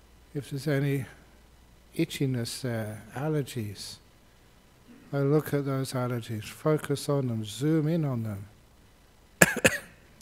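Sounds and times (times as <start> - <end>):
speech: 0.4 - 1.2, 2.0 - 4.0, 5.1 - 8.5
person coughing: 9.4 - 10.0.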